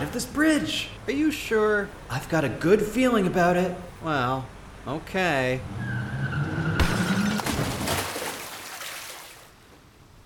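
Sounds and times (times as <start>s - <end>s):
speech: 0.2s - 5.8s
car tire squeal while skidding: 5.7s - 7.4s
car crashing through a bridge railing: 6.4s - 8.2s.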